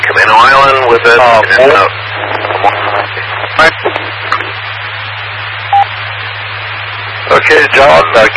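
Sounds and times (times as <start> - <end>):
voices garbled together from two colliding radio transmissions: 0.0 - 4.6, 7.3 - 8.3
short bursts of static: 0.0 - 8.3
steady hum: 0.0 - 8.3
speech: 0.2 - 2.8, 7.4 - 8.3.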